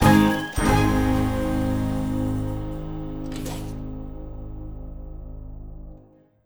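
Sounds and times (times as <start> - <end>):
big win ending jingle: 0.0 - 3.8.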